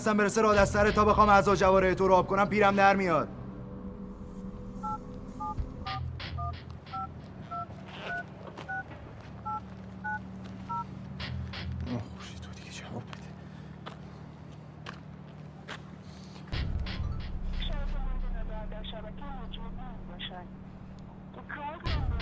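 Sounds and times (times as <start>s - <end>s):
speech: 0.0s - 3.4s
low rumble: 0.0s - 13.8s, 16.5s - 22.2s
mobile phone touch-tone keypad beeps: 4.8s - 8.8s, 9.4s - 10.8s.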